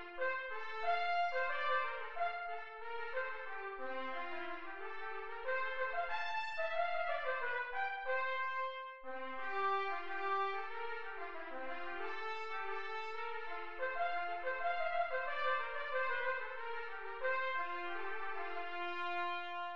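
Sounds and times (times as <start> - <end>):
trumpet playing: 0.2 - 19.7.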